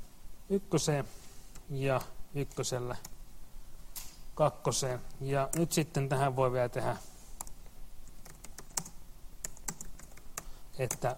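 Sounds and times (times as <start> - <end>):
speech: 0.5 - 3.1, 4.4 - 7.1, 10.8 - 11.1
typing on a computer keyboard: 7.4 - 11.1.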